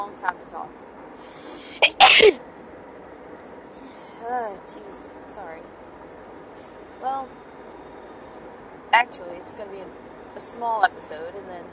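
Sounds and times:
single sharp sneeze: 1.2s - 2.4s
speech: 4.6s - 5.8s, 7.0s - 7.5s, 8.9s - 11.7s.

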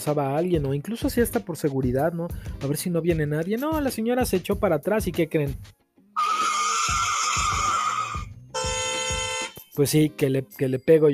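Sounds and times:
speech: 0.0s - 5.8s, 9.8s - 11.1s
loud car tire screech: 6.2s - 9.5s
sustained blaring car horn: 7.4s - 9.8s.

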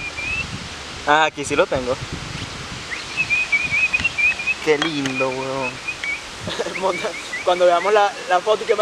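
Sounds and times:
canary singing: 0.0s - 0.5s, 2.9s - 8.2s
steady hiss: 0.0s - 8.7s
speech: 1.1s - 2.3s, 4.6s - 8.7s
laughter: 6.4s - 7.3s.

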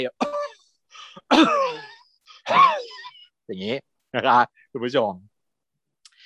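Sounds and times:
speech: 0.0s - 0.3s, 1.2s - 1.8s, 3.5s - 5.3s
person acting out choking with coughing and gasping: 0.0s - 3.3s.

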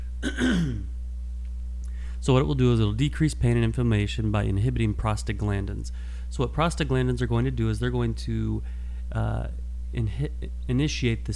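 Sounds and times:
room hum: 0.0s - 11.3s
person with a cough coughing: 0.2s - 0.9s
speech: 0.2s - 0.9s, 2.2s - 11.3s
throat clearing: 0.2s - 0.9s.

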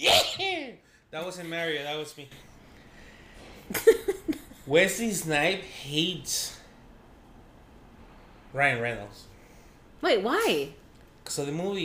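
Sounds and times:
sharp breathy sneeze: 0.0s - 0.6s
speech: 1.1s - 2.6s, 3.7s - 6.6s, 8.5s - 9.3s, 10.0s - 11.8s.

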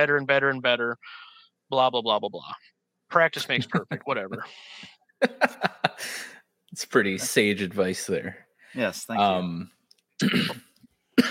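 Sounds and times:
speech: 0.0s - 11.2s
laughter: 3.4s - 6.3s
person coughing harshly: 10.2s - 11.2s.

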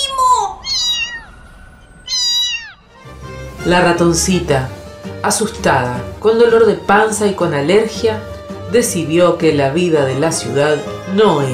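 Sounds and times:
cats meowing: 0.6s - 3.0s
speech: 3.6s - 11.5s.

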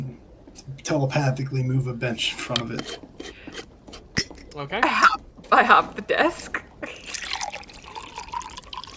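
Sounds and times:
speech: 0.6s - 3.4s, 4.6s - 7.0s
liquid pouring into a vessel with a bubbly trickle: 6.8s - 8.9s.

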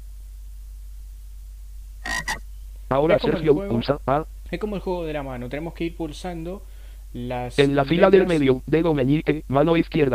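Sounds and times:
low steady hum: 0.0s - 10.1s
toad croaking raspily: 2.0s - 2.4s
speech: 2.9s - 10.1s.

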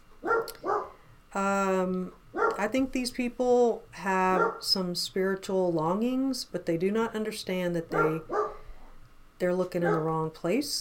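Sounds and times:
dog barking: 0.2s - 1.0s, 2.4s - 2.6s, 4.4s - 4.6s, 7.9s - 8.6s, 9.8s - 10.1s
speech: 1.4s - 8.4s, 9.4s - 10.7s.

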